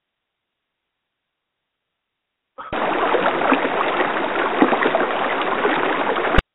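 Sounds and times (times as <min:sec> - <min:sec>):
flowing water: 0:02.7 - 0:06.5.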